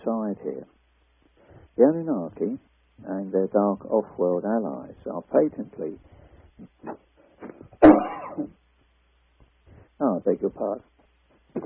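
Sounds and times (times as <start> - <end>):
speech: 0.3 - 0.8, 1.6 - 8.6, 10.0 - 10.9
person coughing: 6.6 - 8.6.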